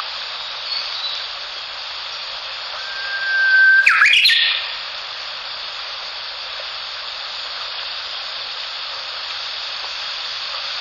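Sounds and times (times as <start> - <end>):
constant broad hiss: 0.0 - 10.8
Japanese bush warbler song: 0.6 - 1.4, 2.8 - 5.0.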